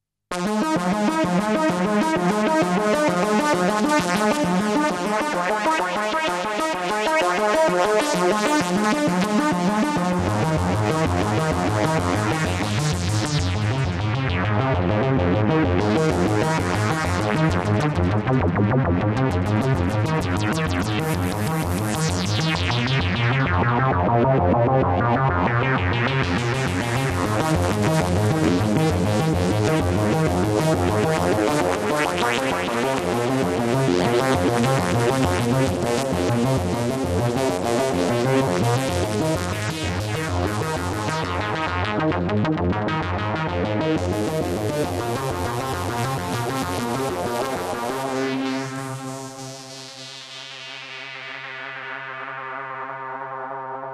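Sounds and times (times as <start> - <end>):
MaxiKorg synthesizer: 0.3 - 53.9.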